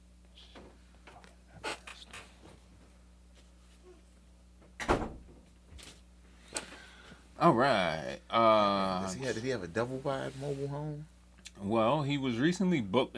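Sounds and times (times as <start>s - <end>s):
steady low room hum: 0.0s - 13.1s
door thudding shut: 4.8s - 5.4s
speech: 7.4s - 13.1s.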